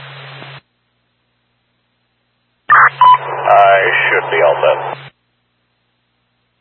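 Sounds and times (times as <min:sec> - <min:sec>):
radio static: 0:02.7 - 0:05.1.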